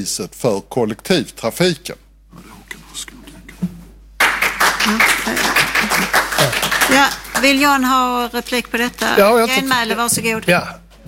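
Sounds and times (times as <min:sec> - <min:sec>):
speech: 0:00.0 - 0:02.4, 0:04.9 - 0:05.5, 0:06.4 - 0:10.8
audience applause: 0:04.2 - 0:10.1.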